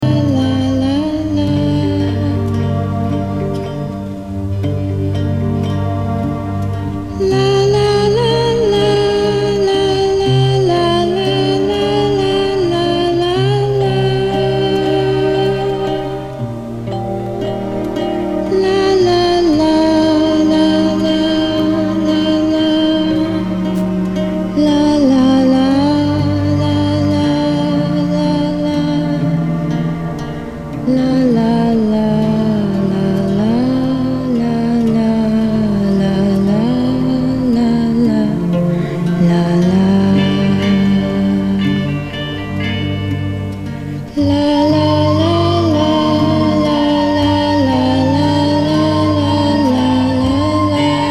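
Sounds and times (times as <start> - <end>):
film music: 0.0 - 51.1.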